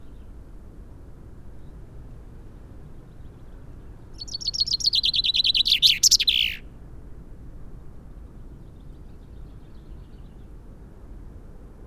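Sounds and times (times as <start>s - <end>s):
common chaffinch Fringilla coelebs song: 4.2s - 6.6s.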